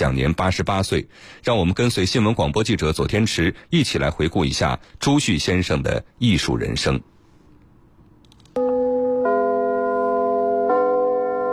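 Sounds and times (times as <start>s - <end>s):
speech: 0.0s - 7.1s
theatre curtain-raising bell ringing at a Beijing playhouse: 8.6s - 11.5s.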